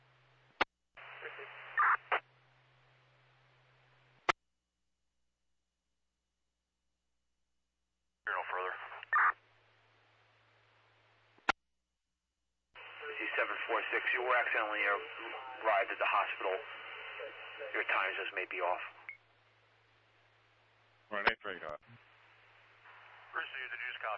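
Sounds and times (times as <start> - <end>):
crackly hissing radio static: 1.0 - 2.3, 8.3 - 9.4, 12.8 - 19.1, 22.6 - 24.1
garbled voice buried in radio noise: 1.2 - 2.1, 8.3 - 9.3, 12.8 - 19.0, 23.4 - 24.1
speech: 13.2 - 16.8, 17.6 - 19.0, 21.1 - 22.0, 23.3 - 24.1.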